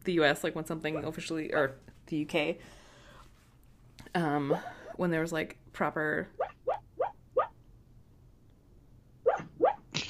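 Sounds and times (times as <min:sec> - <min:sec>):
speech: 0:00.0 - 0:02.8, 0:04.1 - 0:06.8
dog yipping in its sleep: 0:09.3 - 0:09.8.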